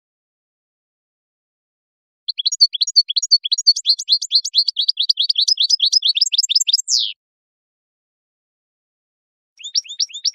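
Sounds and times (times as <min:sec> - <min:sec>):
European goldfinch twittering song with buzzy slur: 0:02.3 - 0:07.2, 0:09.6 - 0:10.3.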